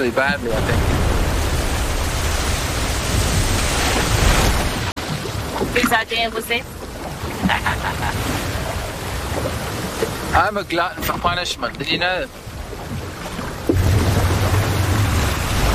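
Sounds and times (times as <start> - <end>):
speech: 0.0 - 1.0, 5.8 - 6.8, 7.5 - 8.5, 10.3 - 12.5
ocean waves surging: 0.0 - 15.7
laughter: 7.3 - 8.4.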